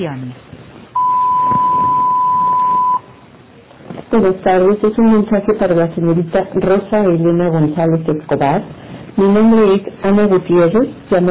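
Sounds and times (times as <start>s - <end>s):
speech: 0.0s - 0.5s, 4.1s - 11.2s
voicemail recording beep tone: 1.0s - 3.2s.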